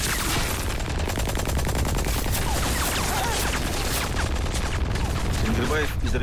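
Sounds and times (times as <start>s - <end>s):
tank machine gun firing rapid shots: 0.0s - 6.2s
speech: 5.6s - 6.2s.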